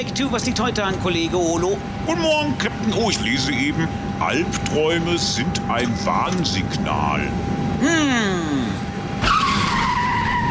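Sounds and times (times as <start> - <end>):
speech: 0.0 - 8.8
airport follow-me car tires squealing while skidding: 9.2 - 10.5.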